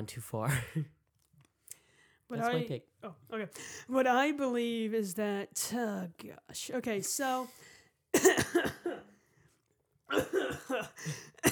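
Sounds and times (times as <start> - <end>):
speech: 0.0 - 1.0, 2.3 - 9.1, 10.1 - 11.4
person coughing harshly: 8.2 - 9.1, 10.1 - 11.4.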